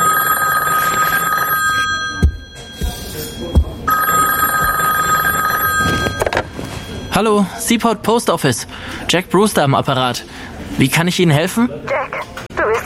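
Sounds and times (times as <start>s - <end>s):
telephone ringing at a post office: 0.0s - 7.2s
speech: 7.2s - 12.3s.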